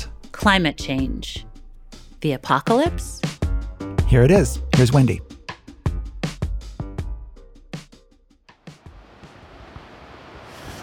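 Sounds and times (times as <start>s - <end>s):
speech: 0.4s - 1.5s, 2.2s - 3.2s, 4.1s - 5.3s
ocean waves washing around a boat at sea: 8.8s - 10.8s
wind at sea: 8.8s - 10.8s
choppy splashes and bumps around a boat at sea: 8.9s - 10.8s.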